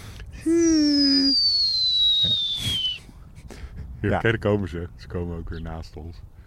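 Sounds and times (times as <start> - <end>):
speech: 0.4 - 0.7, 4.0 - 6.4
starling mimicking a dive-bomber whistle: 0.5 - 3.0.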